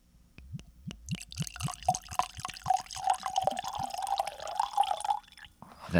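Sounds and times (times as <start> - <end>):
whiskey pouring into a glass: 0.9 - 5.6.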